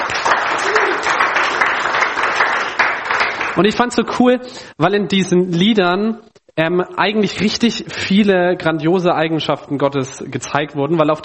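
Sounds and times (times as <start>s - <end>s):
audience applause: 0.0s - 3.6s
speech: 3.6s - 11.2s.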